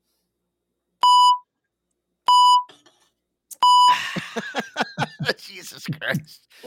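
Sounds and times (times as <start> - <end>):
mobile phone beeping: 1.0 - 1.4, 2.3 - 2.7
laughter: 3.9 - 6.6
speech: 5.3 - 6.6.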